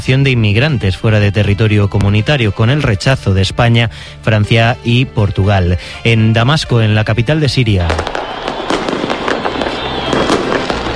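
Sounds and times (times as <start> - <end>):
speech: 0.0 - 8.5
fireworks exploding over a city: 7.9 - 10.9.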